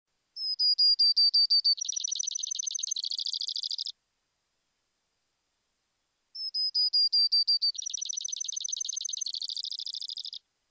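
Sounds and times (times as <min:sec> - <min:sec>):
Brewer's sparrow singing: 0:00.4 - 0:03.9, 0:06.4 - 0:10.4.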